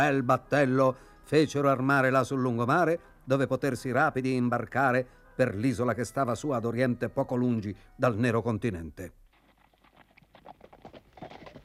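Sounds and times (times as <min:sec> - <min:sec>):
speech: 0:00.0 - 0:09.2
horses galloping with three riders: 0:09.3 - 0:11.6.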